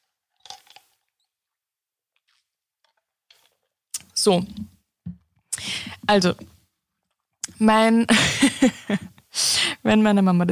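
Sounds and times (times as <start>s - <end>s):
person taking a quick sip of a drink: 0.4s - 1.3s, 2.2s - 3.8s
speech: 4.2s - 4.8s, 6.1s - 6.5s, 7.6s - 9.1s, 9.8s - 10.5s.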